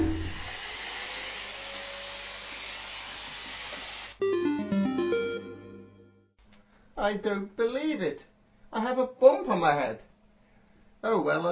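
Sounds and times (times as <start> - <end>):
vacuum cleaner roaring with a loud whooshing drone: 0.0 - 4.2
bright electronic tones: 4.2 - 6.3
speech: 7.0 - 10.1, 11.0 - 11.5.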